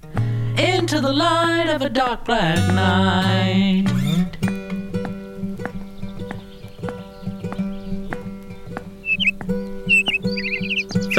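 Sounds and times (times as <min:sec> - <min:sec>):
speech: 0:00.6 - 0:04.0
steady rhythmic clopping: 0:04.2 - 0:11.1
high bird chirps: 0:05.0 - 0:11.1.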